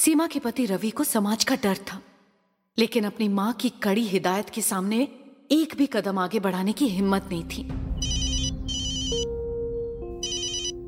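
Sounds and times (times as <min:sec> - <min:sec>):
speech: 0:00.0 - 0:02.1, 0:02.8 - 0:07.9
phone ringtone with bright electronic tones: 0:08.0 - 0:09.3, 0:10.2 - 0:10.8.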